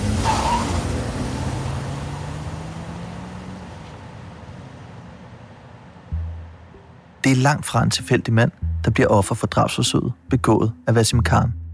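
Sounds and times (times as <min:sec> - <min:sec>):
tire screech: 0:00.0 - 0:04.4
car engine roaring and speeding off: 0:00.0 - 0:07.2
speech: 0:07.2 - 0:11.6.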